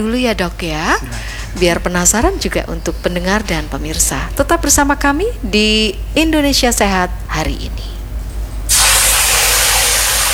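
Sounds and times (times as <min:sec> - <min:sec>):
speech: 0:00.0 - 0:08.0
hot cooking oil spattering with a sizzling hiss: 0:08.7 - 0:10.3.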